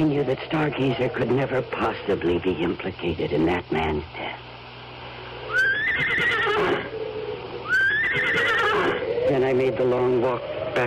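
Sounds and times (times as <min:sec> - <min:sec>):
speech: 0:00.0 - 0:04.4, 0:09.3 - 0:10.8
horse whinnying: 0:05.5 - 0:06.9, 0:07.6 - 0:09.1.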